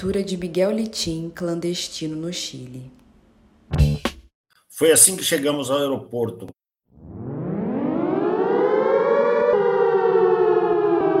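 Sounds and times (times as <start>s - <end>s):
speech: 0.0s - 3.0s, 4.8s - 6.6s
police car siren wailing: 6.9s - 11.1s.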